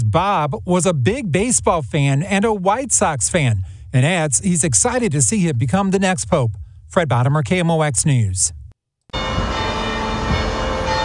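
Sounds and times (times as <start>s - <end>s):
speech: 0.1s - 8.6s
church bells ringing at a cathedral to celebrate a new Pope: 9.1s - 11.0s.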